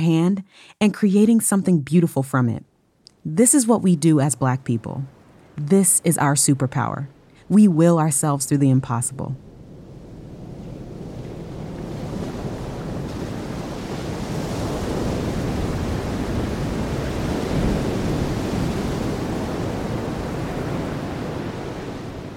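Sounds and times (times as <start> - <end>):
speech: 0.0 - 9.5
ocean surf breaking waves: 3.4 - 22.3.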